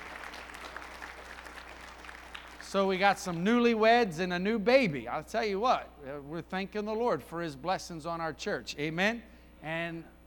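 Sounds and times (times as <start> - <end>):
roomful of people applauding newlyweds: 0.0 - 2.8
speech: 2.7 - 10.2.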